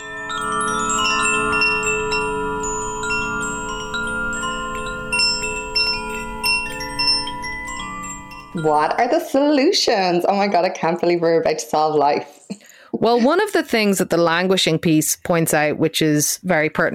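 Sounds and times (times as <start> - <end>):
wind chimes ringing: 0.0 - 10.6
speech: 8.6 - 12.4, 13.0 - 16.9.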